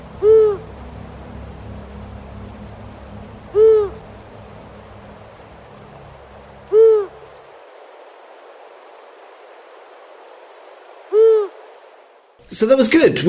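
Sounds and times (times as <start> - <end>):
long-eared owl hooting: 0.0 - 7.5, 11.0 - 11.8
faint low rumble: 0.0 - 8.7
speech: 12.6 - 13.2.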